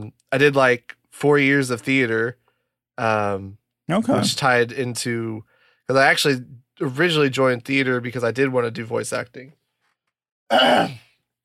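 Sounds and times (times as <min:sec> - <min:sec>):
speech: 0:00.0 - 0:02.4, 0:03.0 - 0:09.6, 0:10.5 - 0:11.0
throat clearing: 0:10.5 - 0:11.1.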